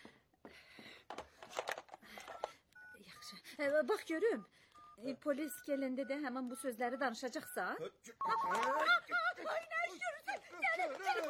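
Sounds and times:
electronic telephone dialing tones: 0:02.2 - 0:09.0
speech: 0:03.6 - 0:10.1
laughter: 0:08.1 - 0:11.2.

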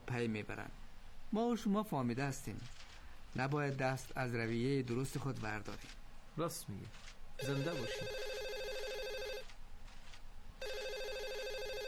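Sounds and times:
speech: 0:00.1 - 0:08.3
telephone ringing with electronic trilling tone: 0:07.4 - 0:09.5, 0:10.6 - 0:11.8.

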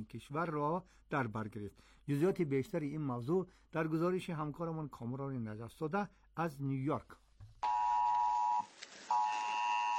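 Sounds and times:
speech: 0:00.0 - 0:07.2
mobile phone emergency alert tone warning of storms: 0:07.6 - 0:09.9.

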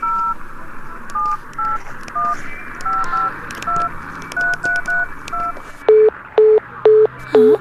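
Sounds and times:
touch-tone telephone dialing beeps: 0:00.0 - 0:00.4, 0:01.2 - 0:07.5
telephone busy signal: 0:02.2 - 0:07.5.

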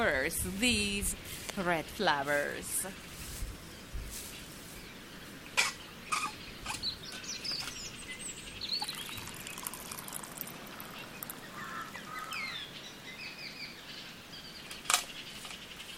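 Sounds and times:
speech: 0:00.0 - 0:03.1
faint high bird chirps: 0:02.9 - 0:15.9
river water flowing in the Tabriz region of Iran: 0:08.2 - 0:13.0.

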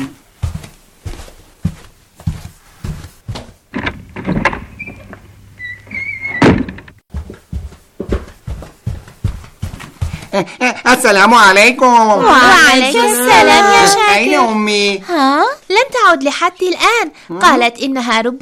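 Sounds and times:
door being opened: 0:03.3 - 0:07.0
brief squeak: 0:05.6 - 0:06.5
speech: 0:10.4 - 0:18.4.

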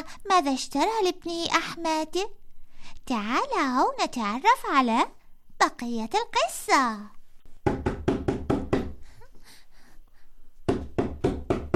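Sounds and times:
speech: 0:00.2 - 0:07.2
knocking on a door: 0:07.6 - 0:09.0, 0:10.7 - 0:11.7.

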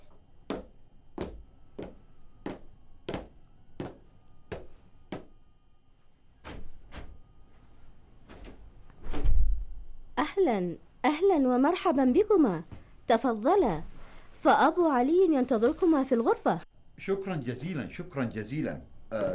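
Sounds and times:
sharp wooden knocks on a door: 0:00.5 - 0:05.3
door swinging open with a low rumble: 0:06.4 - 0:07.2, 0:08.2 - 0:09.7
speech: 0:10.3 - 0:19.3.

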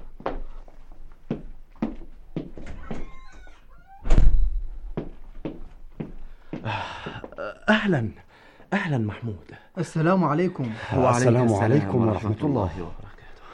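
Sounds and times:
footsteps: 0:00.0 - 0:03.7, 0:04.3 - 0:07.4
door squeaking and thudding as it is pulled open: 0:02.6 - 0:04.8
speech: 0:07.7 - 0:13.0.

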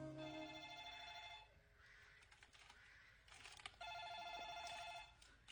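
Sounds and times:
telephone ringing in buzzing bursts: 0:00.2 - 0:01.6, 0:03.8 - 0:05.3.

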